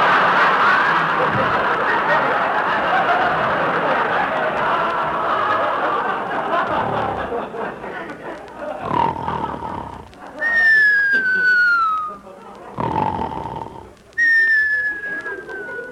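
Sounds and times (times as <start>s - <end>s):
laughter: 0.0s - 15.8s
loud raspy snore on the inhale: 6.6s - 7.4s, 8.8s - 10.2s, 12.7s - 14.0s.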